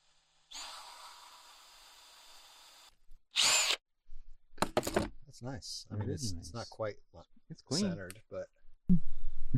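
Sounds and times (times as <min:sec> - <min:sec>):
power drill boring into material: 0:00.4 - 0:03.8
speech: 0:04.8 - 0:09.5.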